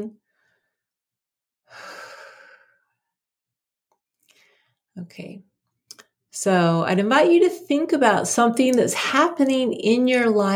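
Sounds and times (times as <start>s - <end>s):
speech: 0.0s - 0.2s, 5.0s - 5.5s, 6.4s - 10.5s
slow deep breath: 1.7s - 3.0s, 4.2s - 4.8s.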